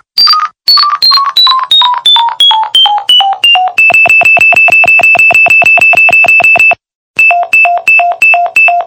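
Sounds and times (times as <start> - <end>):
alarm clock ringtone: 0.2 - 8.8.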